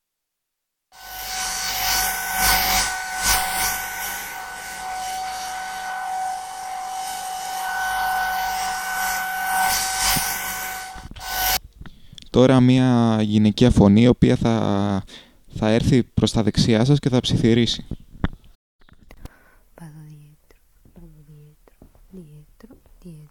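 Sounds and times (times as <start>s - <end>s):
hair dryer circling around the head: 1.0s - 11.6s
speech: 12.4s - 18.0s.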